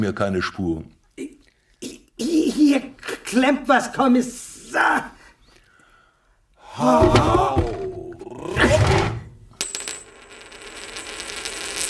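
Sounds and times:
speech: 0.0s - 1.0s, 2.5s - 5.2s, 6.8s - 7.7s
Greek coin dropping with a metallic clink and rattle: 9.6s - 11.8s.

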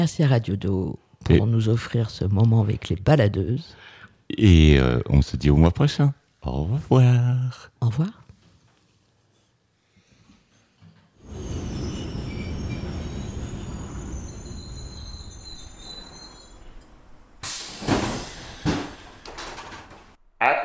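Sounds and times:
speech: 0.0s - 8.2s
high thin train wheel squeals: 11.2s - 19.2s
train arriving at a station with a deep rumble: 11.2s - 20.2s
sharp loud clunks and clatters of an arriving train: 15.9s - 20.2s.

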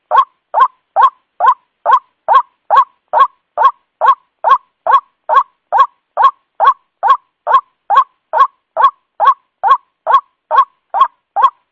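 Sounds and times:
white-breasted waterhen lure call of harsh rising croaking notes: 0.0s - 11.7s.

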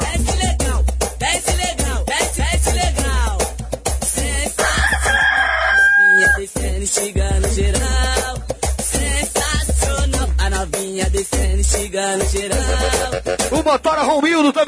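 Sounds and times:
loud pounding funk music with a heavy driving beat: 0.0s - 14.6s
rooster crowing: 4.6s - 6.5s.

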